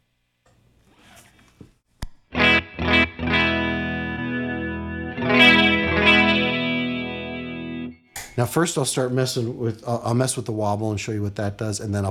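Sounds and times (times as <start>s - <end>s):
guitar chords through a tape delay unit blending two tape decks: 2.3s - 8.0s
speech: 8.4s - 12.0s.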